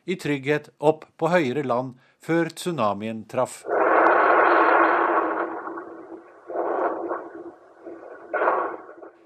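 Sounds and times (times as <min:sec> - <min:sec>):
speech: 0:00.0 - 0:03.8
reconstructed sound of violent undersea earthquake off the coast of Japan: 0:03.6 - 0:09.2.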